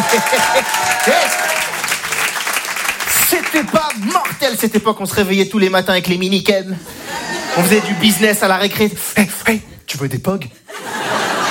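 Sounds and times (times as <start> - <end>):
laughter: 0.0 - 1.6, 6.9 - 8.5, 10.7 - 11.4
crowd applauding: 0.0 - 4.6
speech: 0.1 - 1.9, 3.3 - 10.6.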